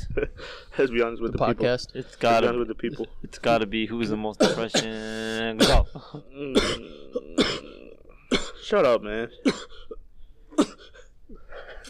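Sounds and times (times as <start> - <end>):
speech: 0.2 - 9.9
harsh coughing or throat-clearing: 4.4 - 8.6, 9.4 - 11.8.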